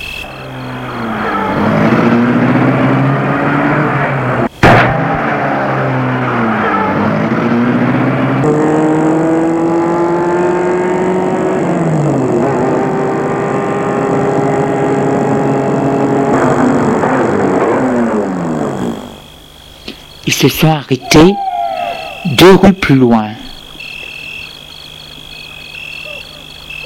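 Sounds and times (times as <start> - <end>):
car engine starting: 0.2 - 19.2
speech: 20.4 - 21.4, 22.4 - 23.3.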